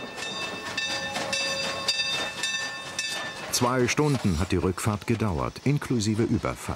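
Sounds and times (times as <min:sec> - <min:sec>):
train wheels clattering rolling into its starting station at Williams: 0:00.0 - 0:05.5
speech: 0:03.6 - 0:06.7.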